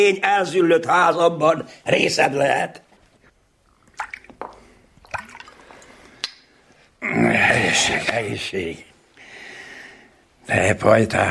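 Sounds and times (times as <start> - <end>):
speech: 0.0 - 2.9, 7.0 - 8.9, 10.5 - 11.2
cognac poured into a glass: 3.6 - 6.0.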